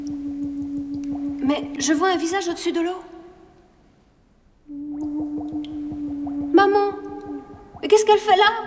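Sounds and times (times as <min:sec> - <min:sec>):
air blown through a tube into water, bubbling: 0:00.0 - 0:02.4, 0:04.7 - 0:08.6
speech: 0:01.5 - 0:03.1, 0:08.1 - 0:08.6.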